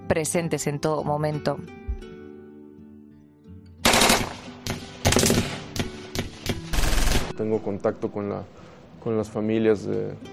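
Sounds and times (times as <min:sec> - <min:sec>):
speech: 0:00.1 - 0:02.1, 0:07.4 - 0:10.3
automatic gunfire fired from cars at people in a street: 0:03.8 - 0:07.4.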